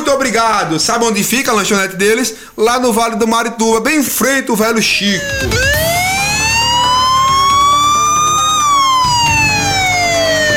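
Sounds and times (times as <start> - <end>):
speech: 0.1 - 6.0
siren wailing: 4.9 - 10.5.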